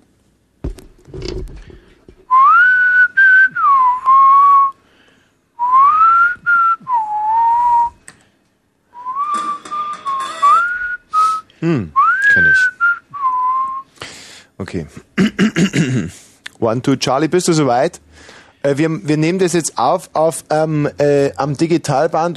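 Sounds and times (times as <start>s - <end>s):
speech: 1.1s - 1.8s, 11.6s - 11.9s, 14.7s - 15.9s, 16.6s - 22.3s
person whistling a wavering melody: 2.3s - 4.7s, 5.6s - 8.0s, 9.0s - 13.9s.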